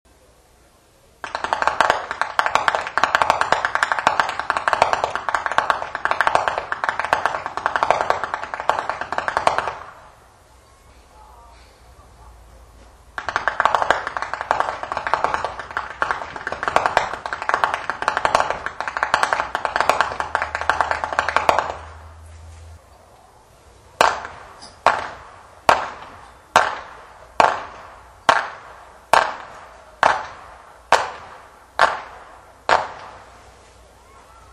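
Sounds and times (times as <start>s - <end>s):
whip cracking in Flachgau Bergheim: 1.2s - 10.1s, 13.2s - 22.1s, 24.0s - 33.4s.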